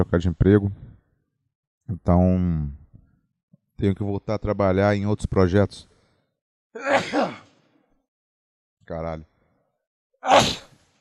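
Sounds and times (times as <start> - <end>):
speech: 0.0 - 0.8, 1.9 - 2.8, 3.8 - 5.9, 6.8 - 7.4, 8.9 - 9.3, 10.2 - 10.7
loud sneeze: 6.8 - 7.6, 10.2 - 10.9.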